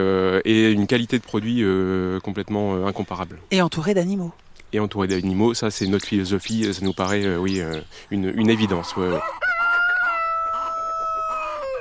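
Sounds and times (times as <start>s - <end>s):
speech: 0.0s - 9.4s
hens clucking: 7.8s - 11.7s
rooster crowing: 8.5s - 11.7s.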